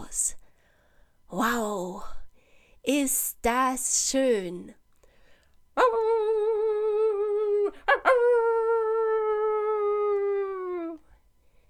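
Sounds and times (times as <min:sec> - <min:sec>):
speech: 0:01.3 - 0:02.2, 0:02.8 - 0:04.8
dog howling like a wolf: 0:05.8 - 0:11.0.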